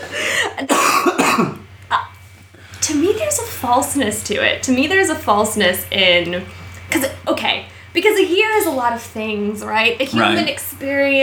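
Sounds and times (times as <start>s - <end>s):
person coughing: 0.0s - 1.6s, 10.2s - 10.5s
speech: 0.6s - 1.5s, 3.4s - 11.2s.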